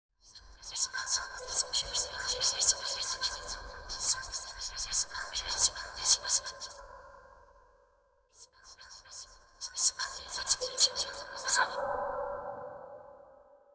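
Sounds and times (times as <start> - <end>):
airy mystical women's voices: 0.4 - 6.8, 8.4 - 11.9.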